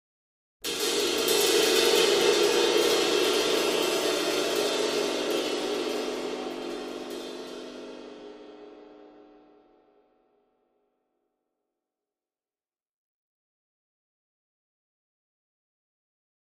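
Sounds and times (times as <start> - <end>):
large drum cymbal trill: 0.6 - 9.8.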